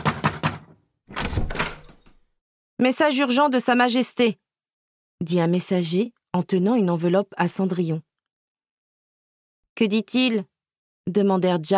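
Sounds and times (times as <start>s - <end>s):
firm knocks on a door: 0.0s - 1.7s
rumbling door noise: 1.1s - 2.2s
speech: 2.8s - 4.4s, 5.2s - 8.1s, 9.8s - 10.5s, 11.1s - 11.7s.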